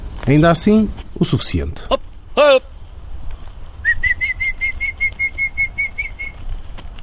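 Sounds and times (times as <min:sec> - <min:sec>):
speech: 0:00.3 - 0:02.7
falcon wings flapping taking off from a glove: 0:03.2 - 0:07.0.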